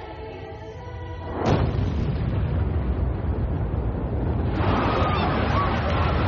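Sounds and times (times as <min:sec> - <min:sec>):
strong explosion detonating in upper floors of a building: 0:01.2 - 0:06.2.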